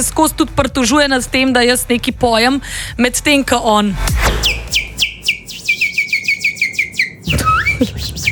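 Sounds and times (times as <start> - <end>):
speech: 0.0 - 4.6
man whistling like a songbird: 4.4 - 8.3.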